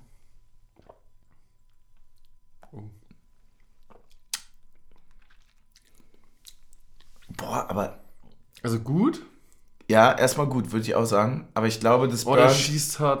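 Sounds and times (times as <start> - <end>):
wet chewing of a cinnamon snack: 0.1 - 7.4, 8.1 - 8.7
speech: 7.6 - 8.0, 8.6 - 9.3, 9.9 - 13.1.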